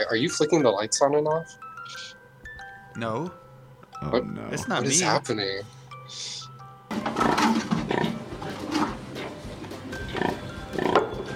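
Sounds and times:
speech: 0.0 - 2.2, 3.0 - 3.4, 4.0 - 7.7
pigs grunting, snorting and squealing: 7.1 - 9.1, 10.0 - 11.2.

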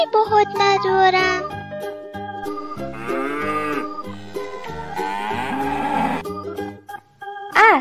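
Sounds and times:
speech: 0.0 - 2.0
cow mooing: 2.5 - 6.3.

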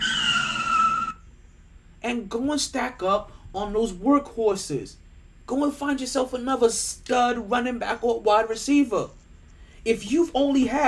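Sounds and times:
car brakes screeching with tire squeal: 0.0 - 1.3
speech: 2.0 - 9.2, 9.8 - 10.8.

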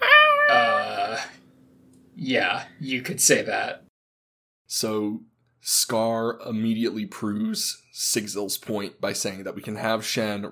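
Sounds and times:
cat meowing: 0.0 - 1.3
speech: 2.2 - 3.9, 4.7 - 10.4.

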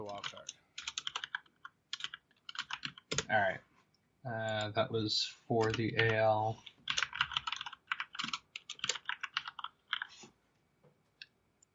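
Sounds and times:
typing on a computer keyboard: 0.0 - 3.3, 5.6 - 6.2, 6.8 - 10.2
speech: 3.3 - 6.7.

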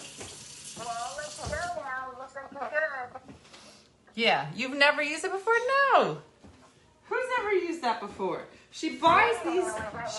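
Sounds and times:
faucet running steadily: 0.0 - 1.8
speech: 4.2 - 6.3, 7.4 - 10.1.

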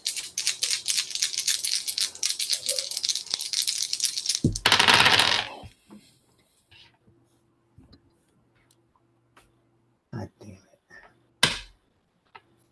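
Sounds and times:
dice rolling across a table during a tabletop role-playing game: 0.0 - 5.7.

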